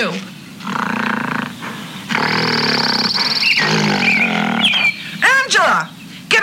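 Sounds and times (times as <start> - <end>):
speech: 0.0 - 0.3
large hairy ape-like beast roaring and growling: 0.6 - 4.8.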